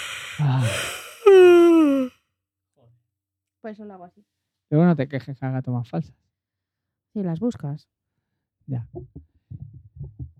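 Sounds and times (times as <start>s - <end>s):
person yawning with a voiced falling groan: 0.0s - 2.1s
speech: 0.4s - 0.9s, 3.7s - 6.2s, 7.2s - 8.0s, 8.7s - 9.3s.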